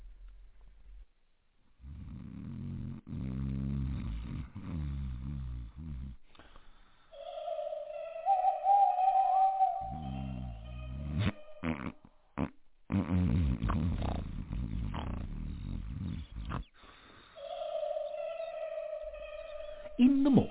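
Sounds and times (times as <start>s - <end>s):
heavy rumbling snoring: 1.8s - 6.2s, 9.9s - 17.3s
high whistling tone: 7.1s - 11.9s, 17.2s - 20.5s.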